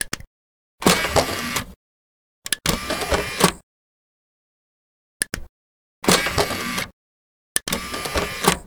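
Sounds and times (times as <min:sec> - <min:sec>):
desktop computer DVD tray opening and closing: 0:00.9 - 0:01.7, 0:02.7 - 0:03.6, 0:06.1 - 0:06.9, 0:07.6 - 0:08.6.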